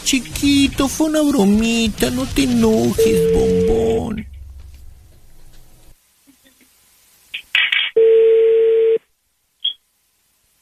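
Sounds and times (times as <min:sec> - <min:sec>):
speech: 0:00.1 - 0:04.3
telephone line tone while a call is being placed: 0:03.0 - 0:04.2, 0:08.0 - 0:09.0.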